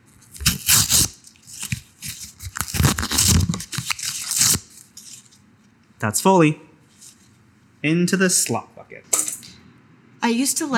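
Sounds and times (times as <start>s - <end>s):
paper card being torn apart: 0.2s - 5.3s
speech: 6.0s - 6.7s, 7.8s - 9.2s, 10.2s - 10.7s.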